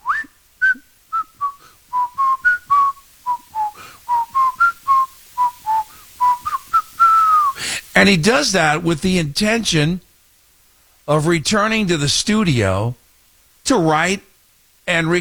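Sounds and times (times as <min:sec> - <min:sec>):
person casually whistling a simple melody: 0:00.0 - 0:07.6
speech: 0:08.0 - 0:10.0, 0:11.1 - 0:13.0, 0:13.7 - 0:14.3, 0:14.9 - 0:15.1.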